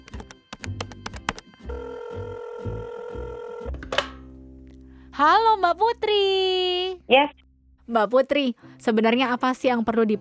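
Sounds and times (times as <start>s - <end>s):
call connecting click: 0.0s - 1.6s, 3.7s - 4.3s
telephone keypad beeps: 0.0s - 2.3s
speech: 5.2s - 10.1s.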